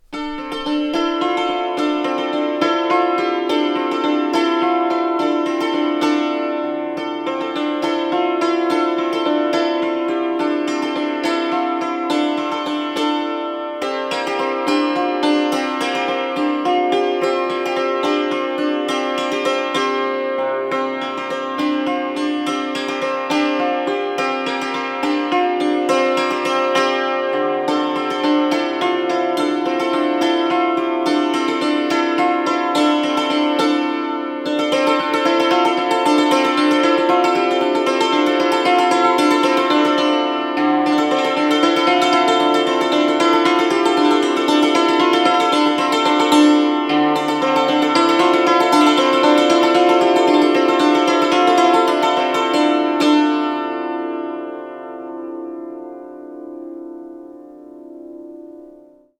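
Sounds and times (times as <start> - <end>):
dulcimer: 0.0 - 59.1.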